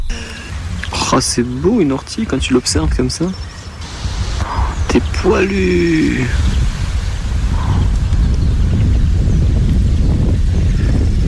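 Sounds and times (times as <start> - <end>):
heavy wind buffeting a microphone outdoors: 0.0 - 11.2
speech: 1.1 - 3.5, 4.9 - 6.5.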